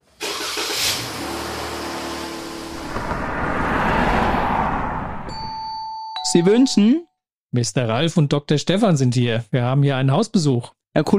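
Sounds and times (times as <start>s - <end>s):
tire and road noise: 0.0s - 5.6s
car engine rumbling as the car is driven up: 0.2s - 5.6s
speech: 6.3s - 11.1s.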